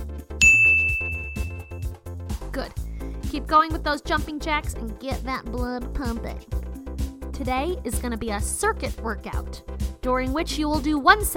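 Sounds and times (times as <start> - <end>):
steady low music: 0.0 - 11.3
single bright bell ding signaling exercise stop: 0.4 - 1.8
speech: 2.6 - 6.6, 7.4 - 11.3.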